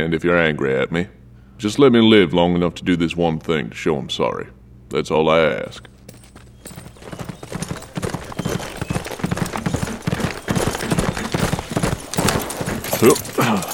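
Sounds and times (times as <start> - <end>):
speech: 0.0 - 5.9, 13.0 - 13.6
horse hooves clip-clopping as horses are ridden into town: 5.7 - 13.7
horse whinny: 6.8 - 13.7.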